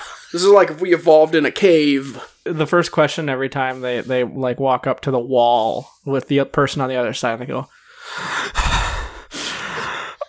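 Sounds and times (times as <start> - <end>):
speech: 0.3 - 8.8
voice imitating heavy breathing through a door: 7.9 - 10.2.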